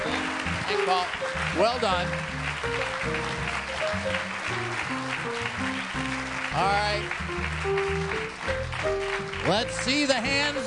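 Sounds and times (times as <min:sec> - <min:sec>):
audience applause: 0:00.0 - 0:10.6
melodic line of musical notes: 0:00.0 - 0:10.6
speech: 0:00.7 - 0:04.9, 0:06.6 - 0:10.6.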